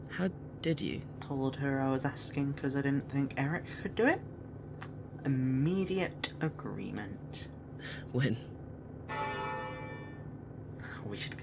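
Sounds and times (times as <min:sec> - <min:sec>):
speech: 0:00.1 - 0:08.6, 0:11.0 - 0:11.4
ship's bell struck as a signal to prepare for land: 0:09.1 - 0:10.4.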